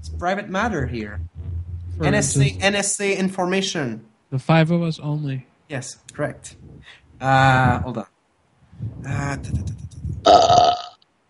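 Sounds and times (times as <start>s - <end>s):
speech: 0.1s - 1.3s, 2.0s - 8.1s, 8.8s - 10.8s
loud drawn-out burp: 10.2s - 11.0s.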